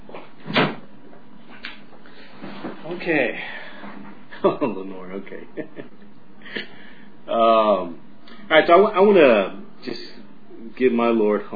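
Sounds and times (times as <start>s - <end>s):
door swinging shut with a soft thud: 0.4s - 0.9s
speech: 3.0s - 3.6s, 4.4s - 10.1s, 10.8s - 11.5s.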